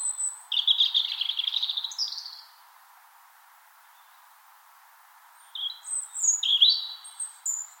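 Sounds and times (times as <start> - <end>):
European robin singing on a spring morning in Finland: 0.0 - 2.6, 3.8 - 4.3, 5.4 - 7.7
soft background hiss: 0.0 - 7.7.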